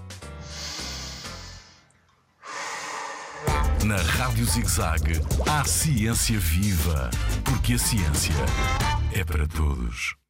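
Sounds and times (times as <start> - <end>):
deep breath taken to ease a side stitch while running: 0.4 - 3.8
speech: 3.8 - 10.2.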